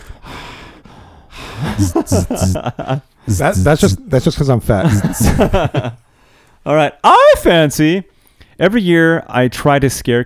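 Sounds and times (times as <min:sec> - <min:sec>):
heavy breathing into the microphone: 0:00.0 - 0:04.1, 0:04.7 - 0:06.6
voiced bursts of person talking or laughing: 0:01.6 - 0:06.0
speech: 0:01.7 - 0:06.0, 0:06.6 - 0:10.2.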